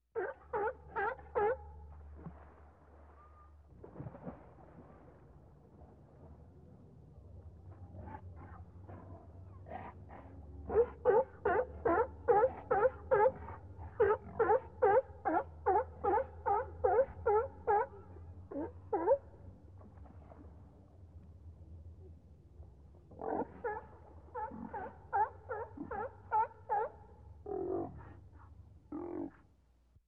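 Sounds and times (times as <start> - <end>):
seal barking long: 0.2 - 1.8, 10.6 - 19.4, 23.1 - 28.2.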